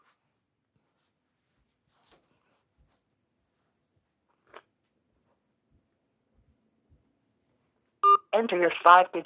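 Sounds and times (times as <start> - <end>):
touch-tone keypad beeps on automated phone payment line: 8.1 - 9.2
person talking: 8.3 - 9.2.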